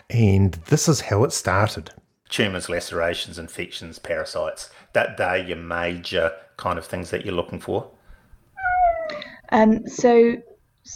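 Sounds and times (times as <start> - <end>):
speech: 0.1 - 8.0, 9.5 - 10.9
female cat meowing: 8.6 - 9.3.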